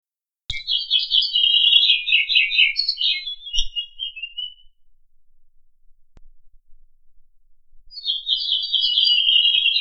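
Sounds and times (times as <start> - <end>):
Nightingale singing warbling trilled phrases in Lipovka: 0.5 - 6.0, 7.9 - 9.7.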